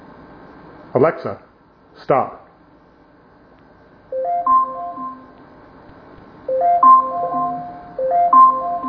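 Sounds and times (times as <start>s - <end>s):
speech: 0.9s - 2.4s
smart speaker camera timer alarm chime: 4.1s - 5.3s, 6.5s - 8.8s.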